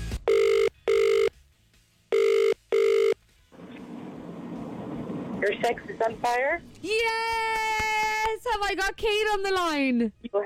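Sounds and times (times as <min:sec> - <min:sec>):
outgoing phone call ringing with electronic tones: 0:00.3 - 0:01.3, 0:02.1 - 0:03.2
speech: 0:05.6 - 0:07.8, 0:08.5 - 0:10.4.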